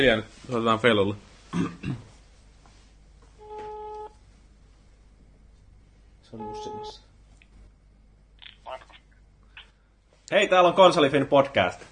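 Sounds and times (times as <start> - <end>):
speech: 0.0 - 2.1, 6.3 - 7.0, 10.3 - 11.8
electronic ringback tone over a speakerphone: 3.4 - 4.2, 6.4 - 7.0.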